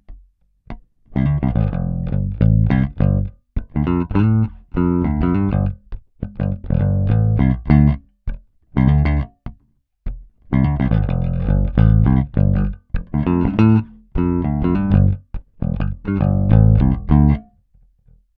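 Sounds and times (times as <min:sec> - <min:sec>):
electric guitar with stock neck pickup, tone up: 0:01.2 - 0:08.0, 0:10.5 - 0:17.4.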